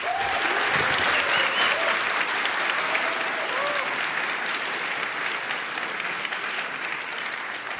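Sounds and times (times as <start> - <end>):
large audience applauding: 0.0 - 7.7.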